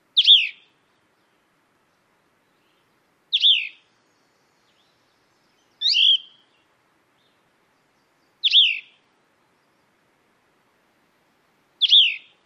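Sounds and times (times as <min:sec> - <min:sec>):
Cassin's Vireo singing: 0:00.2 - 0:01.5, 0:02.4 - 0:10.0, 0:11.8 - 0:12.4.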